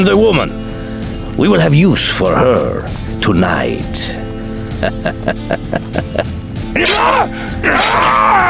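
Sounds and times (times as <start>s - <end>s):
speech: 0.0s - 0.7s, 1.4s - 4.2s, 4.8s - 8.4s
rhythmic thuds or strikes: 0.0s - 7.7s
laughter: 4.7s - 6.4s
man screaming in terror under knife attack: 6.8s - 8.4s.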